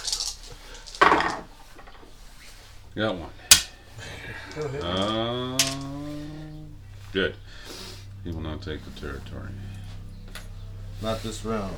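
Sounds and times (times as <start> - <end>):
dice clattering across a table during a tabletop war game: 0.0 - 1.5
low hiss: 0.0 - 11.7
speech: 3.0 - 6.0, 7.1 - 7.6, 8.2 - 9.7, 11.0 - 11.7
laughter: 3.9 - 7.1.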